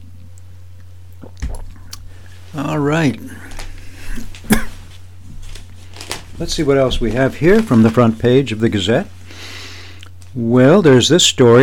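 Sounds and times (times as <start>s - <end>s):
low steady hum: 0.0s - 11.6s
person slurping a hot drink: 1.1s - 2.4s
speech: 1.2s - 1.6s, 2.5s - 3.5s, 6.4s - 9.2s, 10.4s - 11.6s.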